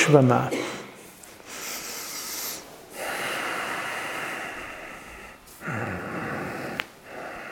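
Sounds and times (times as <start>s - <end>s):
person breathing in and out during a heart-opening breathing exercise: 1.0s - 7.5s
person snorting: 1.5s - 7.5s.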